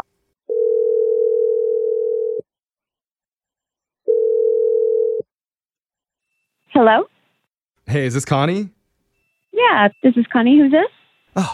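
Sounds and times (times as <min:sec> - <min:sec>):
telephone dial tone while dialing a number: 0:00.0 - 0:02.4, 0:04.1 - 0:05.3
speech: 0:06.8 - 0:07.1, 0:07.9 - 0:08.8, 0:09.5 - 0:11.5.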